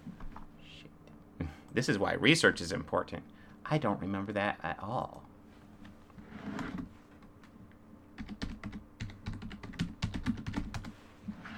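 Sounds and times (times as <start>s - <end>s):
low hum: 0.0s - 11.5s
speech: 1.8s - 5.3s
typing on a computer keyboard: 8.2s - 10.9s.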